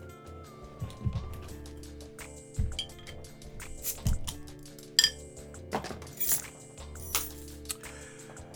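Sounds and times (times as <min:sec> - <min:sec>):
beer bottle opened with a keychain bottle opener: 0:02.6 - 0:07.8.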